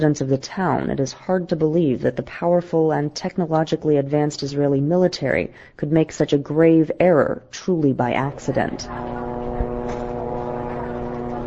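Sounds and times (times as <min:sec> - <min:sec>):
speech: 0:00.0 - 0:09.3
unmanned reconnaissance planes circling overhead in southern Lebanon: 0:08.3 - 0:11.4.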